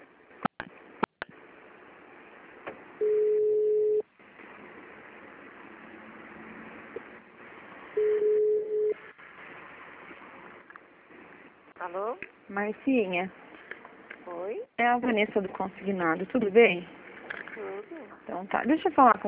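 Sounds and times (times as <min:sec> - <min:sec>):
automated phone menu beeps: 0:03.0 - 0:04.0, 0:08.0 - 0:09.0
speech: 0:11.9 - 0:13.4, 0:14.5 - 0:17.0, 0:18.3 - 0:19.2.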